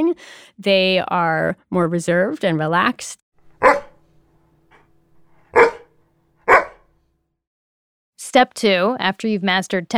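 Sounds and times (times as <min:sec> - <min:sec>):
speech: 0:00.0 - 0:03.8, 0:08.3 - 0:09.9
dog barking: 0:03.6 - 0:04.0, 0:05.5 - 0:05.9, 0:06.5 - 0:06.9.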